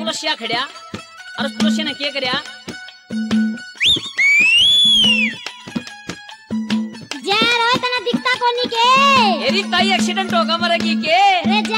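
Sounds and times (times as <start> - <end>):
rhythmic music: 0.0 - 11.7
speech: 0.1 - 3.3, 8.3 - 11.7
long shrill teasing whistle: 3.8 - 5.5.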